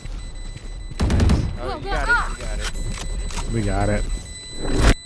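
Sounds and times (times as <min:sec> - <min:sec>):
gunfire in a video game shooter: 0:01.0 - 0:02.0
speech: 0:01.6 - 0:02.1, 0:03.5 - 0:04.8.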